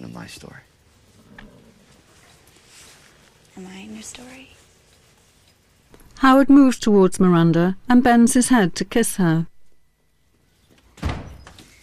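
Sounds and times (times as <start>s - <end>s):
speech: 0.1s - 0.7s, 3.6s - 4.6s, 6.2s - 9.5s
door opening in a barn: 10.7s - 11.8s.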